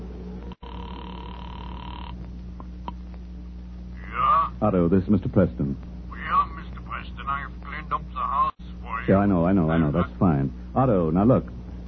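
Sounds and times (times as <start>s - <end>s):
low electrical hum: 0.0s - 11.8s
telephone line tone: 0.4s - 2.2s
speech: 4.6s - 5.9s, 9.0s - 11.6s.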